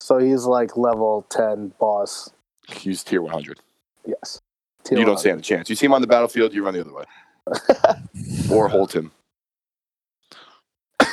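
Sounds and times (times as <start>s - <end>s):
speech: 0.1s - 9.2s
laughter: 7.5s - 9.0s
person coughing harshly: 7.8s - 8.8s.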